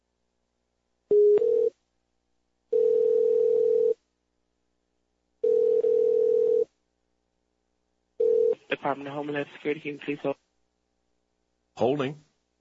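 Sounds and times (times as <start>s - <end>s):
long steady telephone tones of a call to a government agency's phone line: 1.1s - 1.8s, 2.7s - 4.0s, 5.4s - 6.7s, 8.2s - 8.8s
speech: 8.8s - 10.4s, 11.8s - 12.3s.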